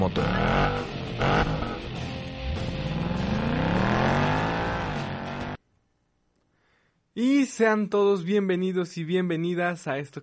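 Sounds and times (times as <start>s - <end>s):
speech: 0.0s - 1.4s, 7.2s - 10.2s
car engine starting and revving as it accelerates: 0.0s - 5.6s.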